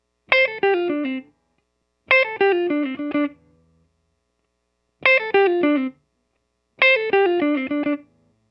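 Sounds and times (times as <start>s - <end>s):
pop rock electric guitar fill in D minor: 0.3s - 1.3s, 2.1s - 3.4s, 5.0s - 5.9s, 6.8s - 8.0s.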